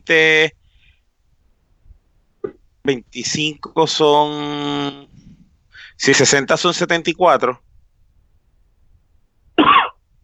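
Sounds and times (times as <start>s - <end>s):
speech: 0.0s - 0.6s, 2.9s - 5.1s, 6.0s - 7.7s
cough: 9.6s - 10.0s.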